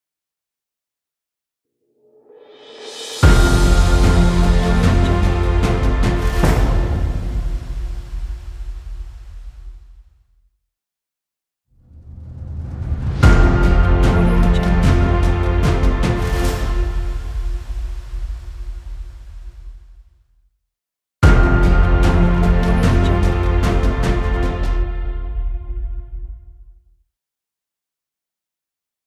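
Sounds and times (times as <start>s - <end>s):
dreamy motivational cinematic logo music: 2.6s - 9.7s, 11.9s - 19.4s, 21.3s - 26.2s.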